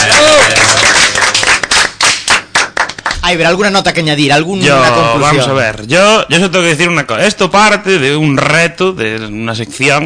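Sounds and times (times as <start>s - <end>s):
scattered voices and cheers: 0.0s - 1.8s
group applause: 0.0s - 3.6s
speech: 3.3s - 10.0s.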